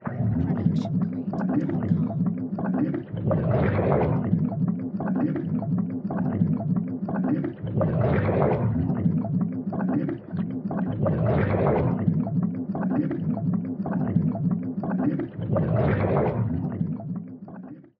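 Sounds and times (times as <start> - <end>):
underwater bubbles: 0.0 - 17.9.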